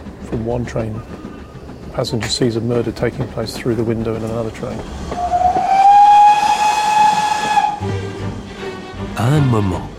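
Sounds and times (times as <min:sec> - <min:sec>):
hiss of steam: 0:00.0 - 0:08.4
speech: 0:00.3 - 0:01.2, 0:02.0 - 0:05.3, 0:09.2 - 0:09.9
steam train whistle: 0:05.2 - 0:08.2.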